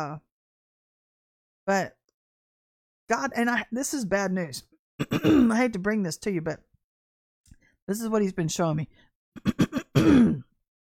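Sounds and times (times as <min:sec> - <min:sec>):
speech: 0:00.0 - 0:00.3, 0:01.6 - 0:02.0, 0:03.1 - 0:06.7, 0:07.9 - 0:10.5
person clearing throat: 0:05.0 - 0:05.6, 0:09.4 - 0:10.6.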